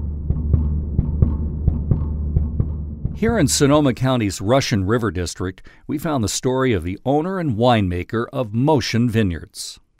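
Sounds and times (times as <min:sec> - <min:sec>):
mechanical pump in a winery thumping: 0:00.0 - 0:03.6
speech: 0:03.2 - 0:09.8.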